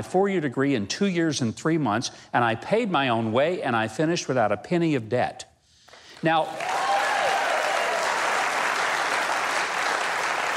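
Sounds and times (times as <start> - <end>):
speech: 0.0 - 5.5, 6.2 - 6.7
audience applause: 6.2 - 10.5.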